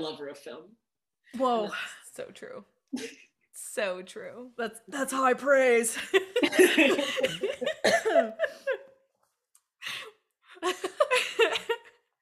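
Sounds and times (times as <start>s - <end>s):
speech: 0.0s - 8.9s, 10.6s - 11.8s
laughter: 6.0s - 8.9s, 10.6s - 12.0s
several people coughing: 6.5s - 8.7s.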